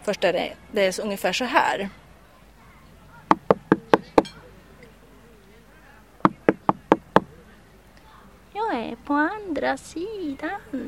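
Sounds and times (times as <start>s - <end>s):
speech: 0.0s - 2.0s, 9.1s - 10.8s
faint murmur: 0.0s - 10.8s
sharp knocking on a door: 3.3s - 4.3s, 6.3s - 7.3s.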